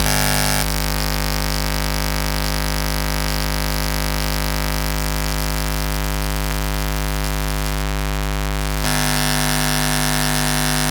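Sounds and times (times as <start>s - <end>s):
defect noise hum and buzz: 0.0s - 10.8s.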